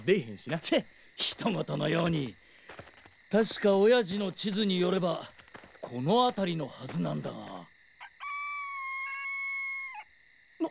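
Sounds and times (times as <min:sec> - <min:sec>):
speech: 0:00.0 - 0:07.6
chicken screeching while being slaughtered: 0:08.0 - 0:10.1.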